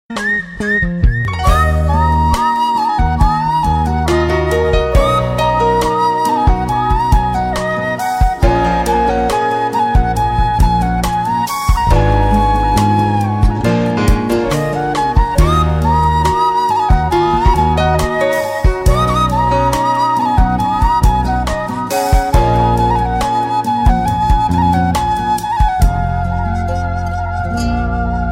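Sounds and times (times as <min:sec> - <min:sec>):
flute: 0:00.1 - 0:28.3.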